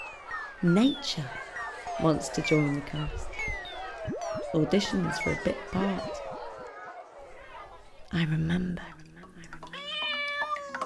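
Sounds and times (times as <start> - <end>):
speech: 0.6 - 1.4, 2.0 - 3.6, 4.5 - 6.2, 8.1 - 9.0
cat meowing: 9.7 - 10.8.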